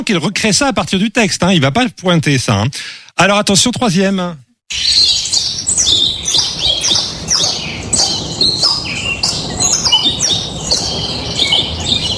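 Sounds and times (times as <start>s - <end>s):
speech: 0.0s - 5.0s
crowd of small caged birds chirping: 4.7s - 12.1s.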